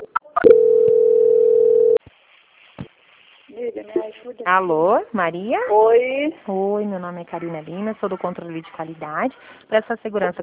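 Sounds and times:
telephone tone during a call transfer: 0:00.0 - 0:02.0
faint telephone line hiss: 0:02.0 - 0:04.4
speech: 0:04.2 - 0:10.4.

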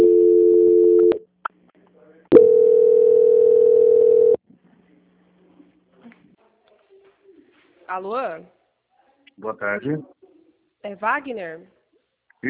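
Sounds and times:
telephone line tone during bank call transfer: 0:00.0 - 0:01.2, 0:02.3 - 0:04.4
speech: 0:08.0 - 0:08.6, 0:09.4 - 0:10.2, 0:10.8 - 0:11.8.

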